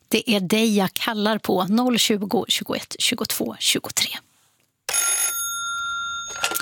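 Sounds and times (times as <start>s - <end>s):
speech: 0.1s - 4.3s
telephone ringing with electronic trill: 4.9s - 6.5s.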